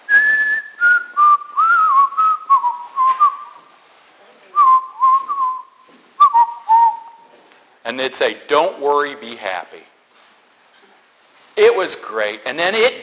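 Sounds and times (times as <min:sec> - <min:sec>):
person whistling a bright melodic tune: 0:00.1 - 0:03.6, 0:04.6 - 0:07.2
speech: 0:07.9 - 0:09.9, 0:11.6 - 0:13.0.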